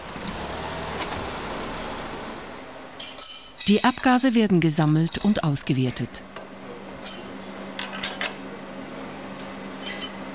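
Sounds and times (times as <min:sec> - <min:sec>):
test car rumble driving onto a chassis dynamometer: 0:00.0 - 0:03.0
speech: 0:03.7 - 0:06.4.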